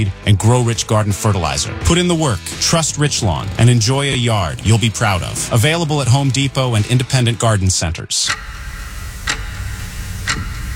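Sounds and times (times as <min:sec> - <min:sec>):
speech: 0:00.0 - 0:08.6
clock ticking: 0:02.7 - 0:07.4, 0:08.2 - 0:10.7.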